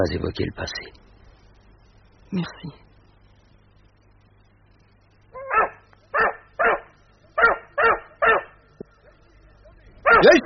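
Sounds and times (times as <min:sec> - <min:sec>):
speech: 0:00.0 - 0:01.0, 0:02.3 - 0:02.8, 0:10.2 - 0:10.4
low steady hum: 0:00.0 - 0:10.4
dog barking: 0:05.4 - 0:08.6, 0:10.0 - 0:10.4.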